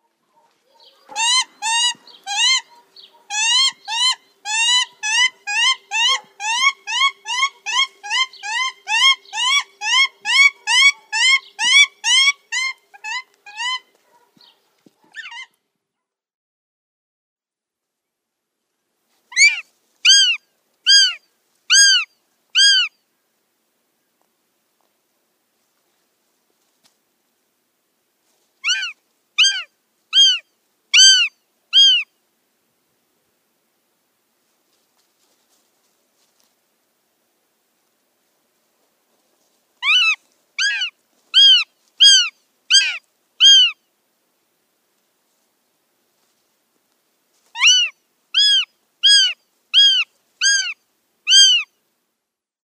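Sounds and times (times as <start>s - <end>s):
female goshawk calling: 0.7s - 15.5s, 19.3s - 22.9s, 28.6s - 32.1s, 39.8s - 43.8s, 47.6s - 51.7s.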